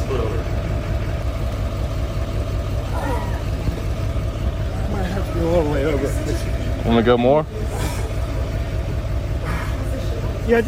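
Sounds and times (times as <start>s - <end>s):
lifted truck engine idling: 0.0s - 10.6s
voices: 2.8s - 10.6s
speech: 7.0s - 7.6s, 10.5s - 10.6s.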